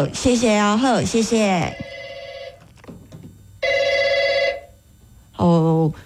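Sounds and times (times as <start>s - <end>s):
speech: 0.0s - 1.9s, 5.4s - 6.0s
telephone ringing in loud buzzy bursts: 1.6s - 4.8s.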